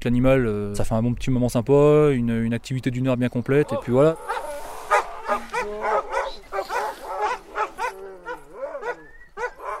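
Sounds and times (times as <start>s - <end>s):
speech: 0.0s - 4.5s
pack of sled dogs barking and yipping: 3.5s - 9.7s.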